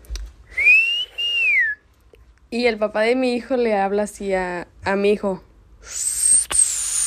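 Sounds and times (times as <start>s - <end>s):
person whistling a two-part signal call: 0.5s - 1.8s, 5.9s - 7.0s
speech: 2.5s - 6.2s.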